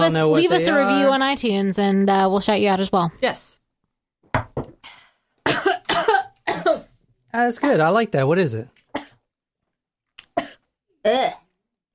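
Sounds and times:
speech: 0.0 - 3.6, 7.3 - 8.8, 11.0 - 11.4
person coughing and sputtering after taking a shot: 5.5 - 6.9, 10.4 - 11.4.

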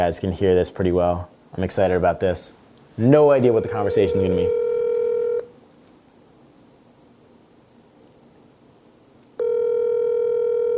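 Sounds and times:
speech: 0.0 - 4.6
ringback tone of an outgoing telephone call going unanswered: 3.5 - 5.5, 9.4 - 10.7.

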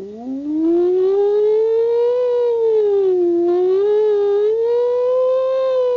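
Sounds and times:
siren wailing: 0.0 - 5.9.

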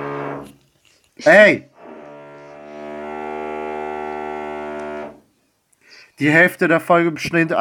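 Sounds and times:
speech: 1.2 - 1.7, 6.2 - 7.5
power drill whirring: 1.8 - 5.2.

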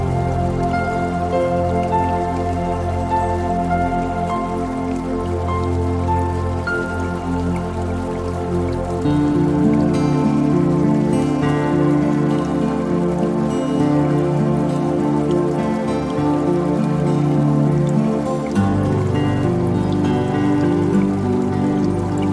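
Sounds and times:
calm music with sustained low tones and steady chords: 0.0 - 22.3
soft patter of water: 0.0 - 22.3.

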